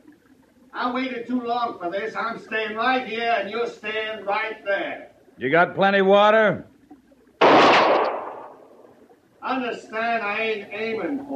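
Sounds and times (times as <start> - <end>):
speech: 0.8 - 6.7, 9.5 - 11.3
pistol shot: 7.4 - 8.7.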